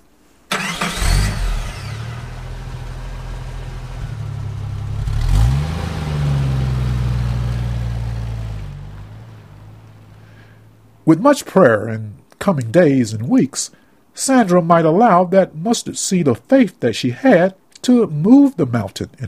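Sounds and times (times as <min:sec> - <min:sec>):
car engine starting and revving as the car drives off: 0:00.5 - 0:10.9
speech: 0:11.1 - 0:19.2.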